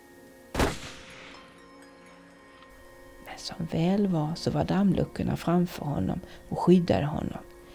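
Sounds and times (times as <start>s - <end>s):
low steady hum: 0.0s - 7.7s
shotgun blast: 0.5s - 1.5s
speech: 3.4s - 7.5s.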